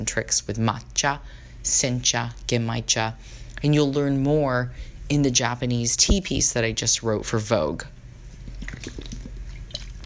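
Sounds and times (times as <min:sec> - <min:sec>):
speech: 0:00.0 - 0:08.0
water sloshing in a bottle while sipping: 0:08.3 - 0:10.0
person swallowing water: 0:08.4 - 0:10.0.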